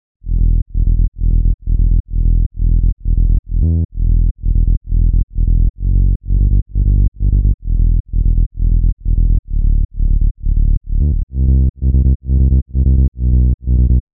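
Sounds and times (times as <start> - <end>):
sub bass: 0.2 - 14.1.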